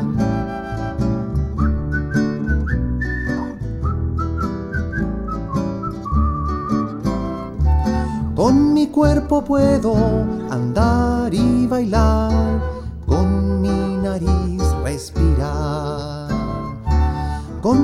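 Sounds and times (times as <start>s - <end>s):
musical backing with bass and rhythm: 0.0s - 17.8s
person whistling a tune: 0.0s - 17.8s
speech: 8.4s - 12.7s, 17.6s - 17.8s.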